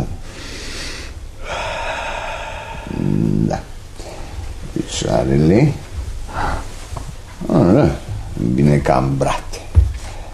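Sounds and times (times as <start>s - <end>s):
deep breath drawn during a medical examination: 0.2s - 4.6s, 6.3s - 6.9s
speech: 5.0s - 5.8s, 7.8s - 9.6s.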